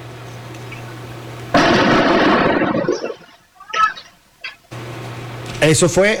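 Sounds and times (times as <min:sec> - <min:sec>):
steady low hum: 0:00.0 - 0:06.1
Molotov cocktails bursting during an attack on a school: 0:01.5 - 0:04.2
speech: 0:05.6 - 0:06.1.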